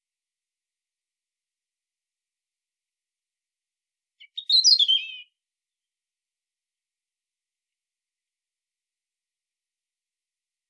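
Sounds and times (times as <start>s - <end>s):
European robin Erithacus rubecula warbled phrase with trilled ending: 4.2s - 5.3s.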